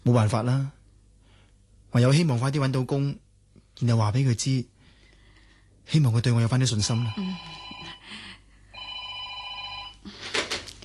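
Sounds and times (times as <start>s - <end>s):
speech: 0.0s - 0.8s, 1.9s - 3.2s, 3.8s - 4.7s, 5.9s - 8.2s
telephone ringing with electronic trill: 6.9s - 8.1s, 8.7s - 10.1s.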